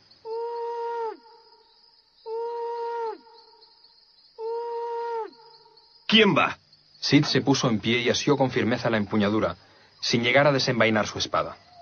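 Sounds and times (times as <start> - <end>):
insects chirping at night: 0.0 - 11.8
owl hooting: 0.2 - 3.7, 4.4 - 5.9
speech: 6.1 - 11.7.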